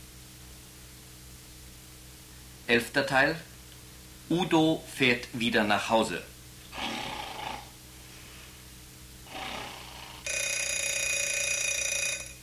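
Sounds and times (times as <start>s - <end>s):
speech: 2.7s - 3.5s, 4.3s - 6.9s
rough snore-like breaths: 6.7s - 7.7s, 9.2s - 10.3s
alarm clock metallic ringing: 10.2s - 12.4s.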